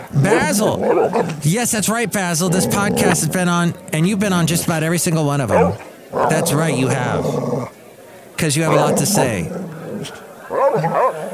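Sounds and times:
low murmur: 0.0 - 11.3
speech: 0.1 - 7.8, 8.4 - 11.3
dog barking with a growl: 0.2 - 1.3, 5.5 - 7.7, 8.7 - 11.3.

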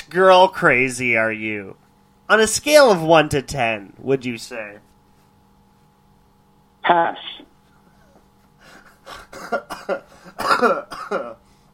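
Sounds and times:
speech: 0.1 - 4.9, 6.9 - 7.5, 9.1 - 11.4
person coughing harshly into the microphone: 9.1 - 11.4.

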